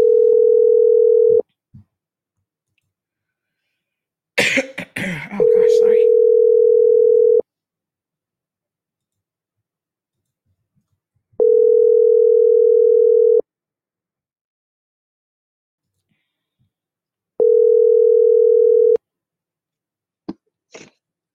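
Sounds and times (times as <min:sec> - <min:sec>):
steady electronic telephone tone while placing a call: 0:00.0 - 0:01.4, 0:05.4 - 0:07.4, 0:11.4 - 0:13.4, 0:17.4 - 0:19.0.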